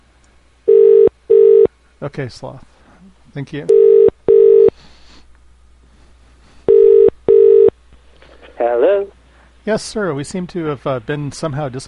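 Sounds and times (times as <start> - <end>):
telephone ringing tone on a call line: 0.7 - 1.7, 3.7 - 4.7, 6.7 - 7.7
speech: 2.0 - 2.7, 3.4 - 3.9, 8.7 - 11.8.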